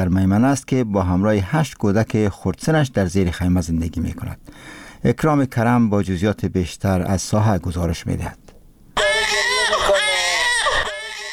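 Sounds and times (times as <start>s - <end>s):
speech: 0.0s - 8.4s
newborn baby crying: 9.0s - 11.3s.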